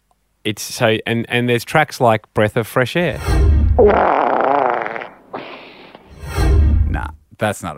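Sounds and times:
speech: 0.4s - 4.2s, 7.4s - 7.7s
wet sputtering fart forced through sweaty cheeks: 3.8s - 6.1s.

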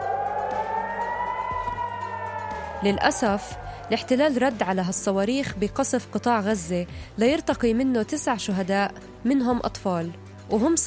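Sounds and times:
several overlapping air raid warning sirens wailing: 0.0s - 5.5s
low rumble: 0.0s - 5.8s
speech: 2.8s - 10.8s.

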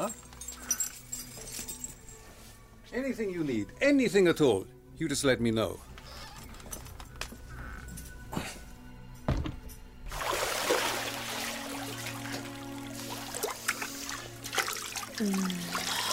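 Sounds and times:
speech: 2.9s - 5.9s
dull knocks: 9.2s - 9.7s
hot water pouring and trickling: 10.1s - 16.1s.

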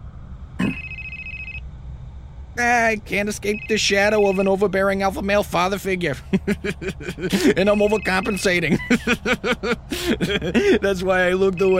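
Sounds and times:
low hum: 0.0s - 11.7s
telephone ringing: 0.7s - 1.6s, 3.5s - 4.4s, 7.7s - 8.5s, 11.5s - 11.7s
speech: 2.6s - 11.7s
laughter: 6.1s - 11.7s.

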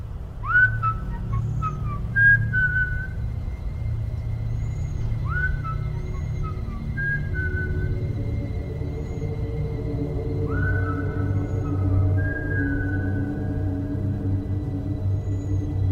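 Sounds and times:
steady low rumble: 0.0s - 15.8s
person whistling a short melodic tune: 0.4s - 3.2s, 5.1s - 14.3s.

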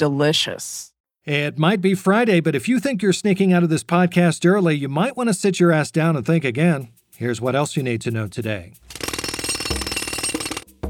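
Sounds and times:
speech: 0.0s - 9.1s
jackhammer drilling: 8.8s - 10.8s.

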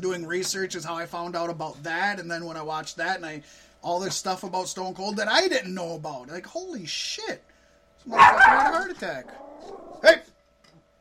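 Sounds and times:
speech: 0.0s - 10.3s
dog barking sharply: 8.1s - 8.8s.

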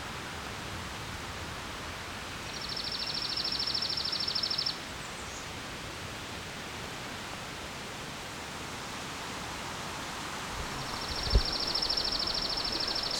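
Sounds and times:
hissing background noise: 0.0s - 13.1s
chipping sparrow giving a dry rapid trill: 10.8s - 13.1s.

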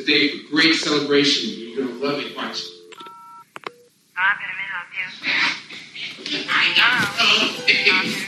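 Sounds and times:
speech: 0.0s - 2.8s, 4.2s - 8.2s
telephone keypad tone: 2.7s - 3.9s.

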